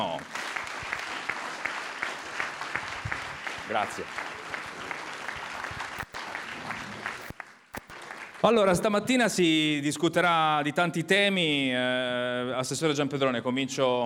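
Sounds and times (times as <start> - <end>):
sustained applause from a sizable audience: 0.0 - 8.9
speech: 3.7 - 4.3, 8.4 - 14.0.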